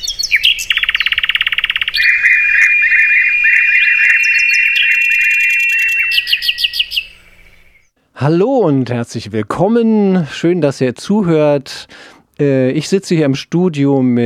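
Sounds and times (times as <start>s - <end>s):
thrush nightingale singing: 0.0s - 8.0s
speech: 8.2s - 14.2s.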